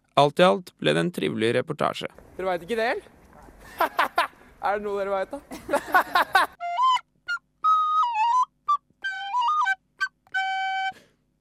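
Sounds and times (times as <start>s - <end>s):
speech: 0.2s - 6.5s
laughter: 3.7s - 4.4s, 5.3s - 6.6s
flute playing a short bright melody: 6.6s - 11.1s.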